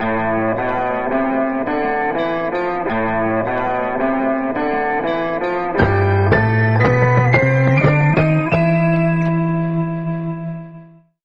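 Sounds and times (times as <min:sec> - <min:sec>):
sad guitar loop: 0:00.0 - 0:11.1
sad keys loop: 0:03.6 - 0:10.8.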